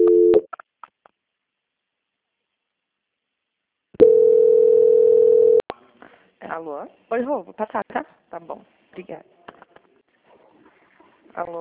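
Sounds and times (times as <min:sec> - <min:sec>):
telephone tones during a call transfer: 0:04.0 - 0:05.6
speech: 0:06.6 - 0:09.4, 0:11.4 - 0:11.5.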